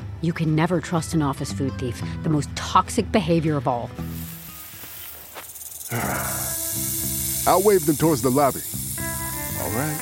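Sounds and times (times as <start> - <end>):
speech: 0.2 - 4.1, 5.9 - 8.7, 9.7 - 10.0
snake hissing: 4.0 - 10.0.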